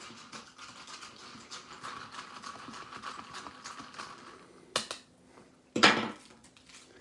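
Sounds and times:
spoon stirring inside a small plastic microwave cup of shells and cheese: 0:00.0 - 0:04.4.

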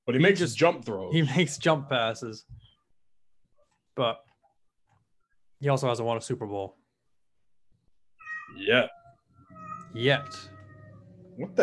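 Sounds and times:
speech: 0:00.1 - 0:02.6, 0:04.0 - 0:04.3, 0:05.6 - 0:06.8, 0:08.5 - 0:09.0, 0:09.9 - 0:10.5, 0:11.4 - 0:11.6
cat screaming: 0:08.2 - 0:11.6.

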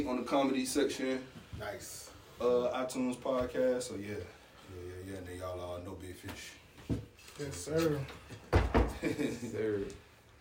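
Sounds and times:
speech: 0:00.0 - 0:10.0
sharp knocks on a door: 0:08.5 - 0:09.0.

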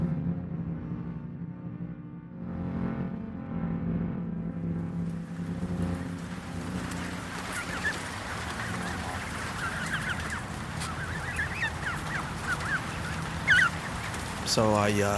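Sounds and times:
steady low engine-like rumble: 0:00.0 - 0:15.1
geese honking: 0:05.2 - 0:15.1
speech: 0:14.6 - 0:15.1.

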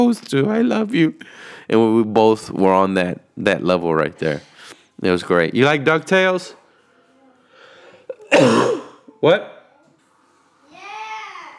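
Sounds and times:
speech: 0:00.0 - 0:06.6, 0:08.3 - 0:09.6
loud harsh cough: 0:08.1 - 0:09.1.

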